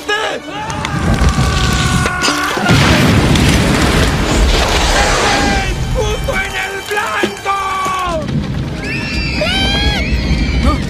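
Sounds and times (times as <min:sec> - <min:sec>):
fire roaring and crackling: 0:00.6 - 0:07.0, 0:07.6 - 0:10.8
fiery explosion: 0:00.9 - 0:06.7, 0:08.1 - 0:10.8.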